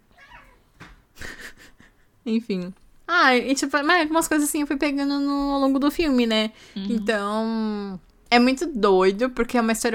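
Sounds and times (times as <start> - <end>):
cats fighting and yowling: 0.1 - 0.7
speech: 2.2 - 9.9.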